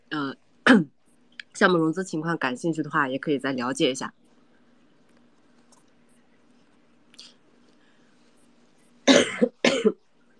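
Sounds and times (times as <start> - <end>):
low steady hum: 0.0 - 10.3
speech: 0.7 - 0.9, 1.6 - 4.2
person coughing harshly: 9.1 - 10.0.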